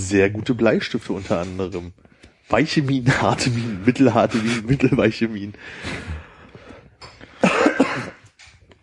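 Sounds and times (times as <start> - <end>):
speech: 0.0 - 6.2
person coughing: 7.3 - 8.3
throat clearing: 7.3 - 8.3.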